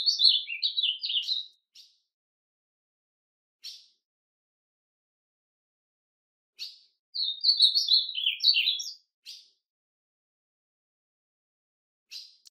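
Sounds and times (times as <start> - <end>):
ultramarine grosbeak warbled song phrase: 0.0 - 2.0, 3.6 - 4.0, 6.6 - 9.6, 12.1 - 12.4.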